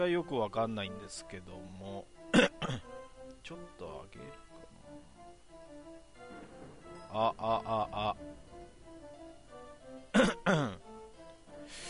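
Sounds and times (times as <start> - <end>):
speech: 0.0 - 5.1, 7.1 - 8.4, 10.2 - 10.8
person coughing to test a microphone level: 2.3 - 2.9, 10.1 - 10.8.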